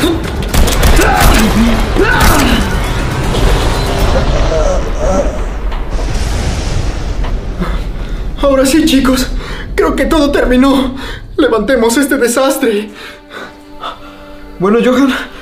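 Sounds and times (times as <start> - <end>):
clattering mechanical noise: 0.0 - 10.7
rapid gunshots: 0.2 - 4.1
speech: 1.4 - 2.3, 8.4 - 13.2, 14.6 - 15.4.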